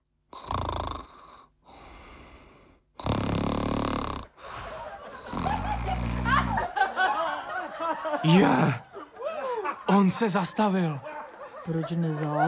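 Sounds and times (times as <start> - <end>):
loud rasping snoring: 0.3 - 6.8
laughter: 4.4 - 12.4
speech: 8.1 - 8.8, 9.9 - 11.1, 11.7 - 12.4.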